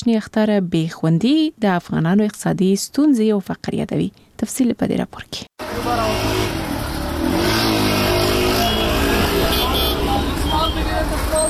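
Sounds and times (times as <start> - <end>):
speech: 0.0 - 6.2
car engines revving: 5.6 - 11.4
car traffic on a city street in Afghanistan: 5.6 - 11.4.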